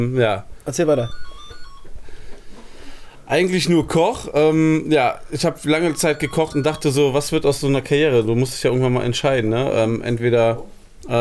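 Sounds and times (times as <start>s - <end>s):
speech: 0.0s - 1.3s, 3.3s - 11.1s
telephone ringing with an electronic warble: 0.9s - 3.0s, 5.6s - 8.6s.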